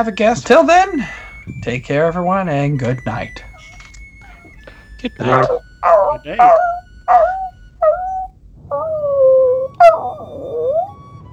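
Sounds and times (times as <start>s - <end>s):
speech: 0.0s - 3.5s, 5.0s - 7.4s
dog whining and howling: 3.4s - 11.0s.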